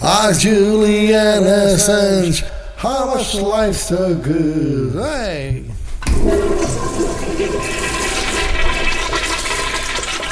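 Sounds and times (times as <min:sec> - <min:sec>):
speech: 0:00.0 - 0:06.4
toilet flushing: 0:06.0 - 0:10.3.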